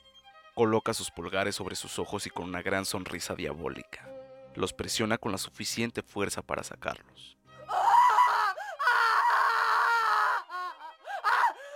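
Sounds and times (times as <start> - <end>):
speech: 0.6 - 7.8
woman screaming in pain with anguished wails: 7.7 - 11.7
sharp gasping breaths: 8.6 - 8.8, 11.0 - 11.7.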